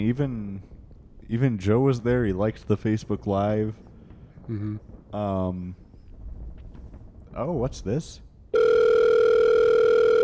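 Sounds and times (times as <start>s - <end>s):
speech: 0.0s - 3.9s, 4.5s - 5.8s, 7.4s - 8.7s
phone ringtone mimicking an outgoing ringback tone: 8.6s - 10.2s.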